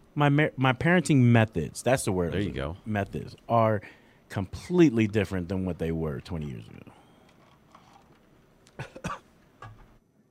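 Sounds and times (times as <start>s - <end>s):
speech: 0.2s - 7.0s
man coughing harshly: 8.8s - 9.3s.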